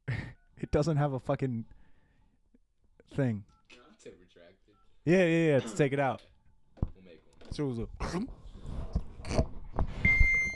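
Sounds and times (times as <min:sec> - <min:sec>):
speech: 0:00.6 - 0:01.8, 0:03.2 - 0:06.3, 0:07.5 - 0:08.4
phone beeping: 0:10.0 - 0:10.5.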